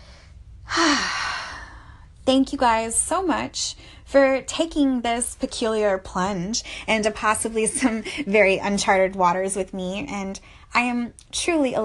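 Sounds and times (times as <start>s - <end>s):
deep breath in and out: 0.0s - 2.2s
speech: 2.3s - 11.8s.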